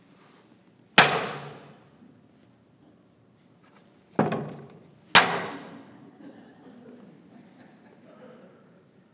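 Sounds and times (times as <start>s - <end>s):
hammer striking a level: 1.0s - 1.7s.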